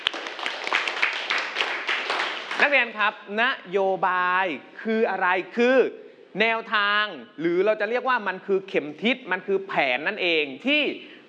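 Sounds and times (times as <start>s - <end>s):
students clapping for a classmate: 0.0s - 2.9s
speech: 2.6s - 11.1s.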